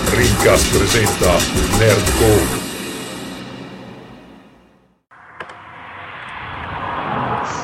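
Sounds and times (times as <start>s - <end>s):
speech: 0.2s - 2.6s
car passing by with whooshing engine roar: 5.5s - 7.6s.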